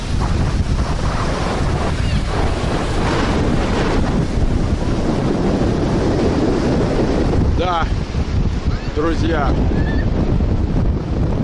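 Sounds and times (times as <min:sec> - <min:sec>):
strong wind buffeting the microphone: 0:00.0 - 0:11.4
surf: 0:00.0 - 0:11.4.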